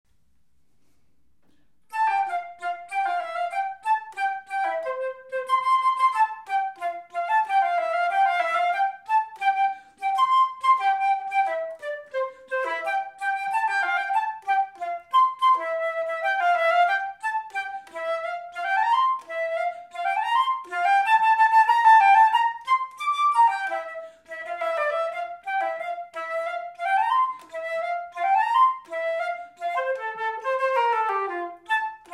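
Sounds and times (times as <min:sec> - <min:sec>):
transverse flute: 0:01.9 - 0:32.1.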